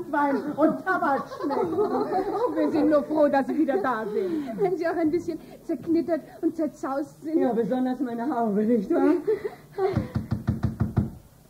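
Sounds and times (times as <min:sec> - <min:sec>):
laughter: 0:00.0 - 0:05.0, 0:09.0 - 0:10.3
speech: 0:00.1 - 0:10.2
firm knocking on a door: 0:09.9 - 0:11.2.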